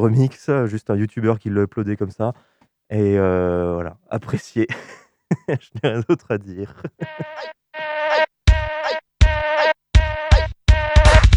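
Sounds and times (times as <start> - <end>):
speech: 0.0 - 8.2
laughter: 4.3 - 7.5
buzzy nasal mosquito-like tones in remixed insecticide commercial audio: 7.0 - 11.0
heavy thumping beat: 8.5 - 11.3.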